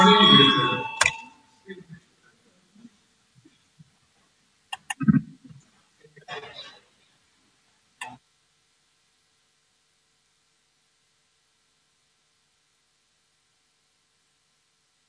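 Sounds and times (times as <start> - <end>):
bell rung to call a vote: 0.0 - 1.4.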